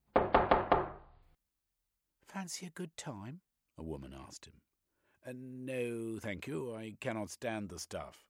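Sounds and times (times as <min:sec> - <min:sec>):
knocking on a door: 0:00.1 - 0:01.1
speech: 0:02.4 - 0:08.2.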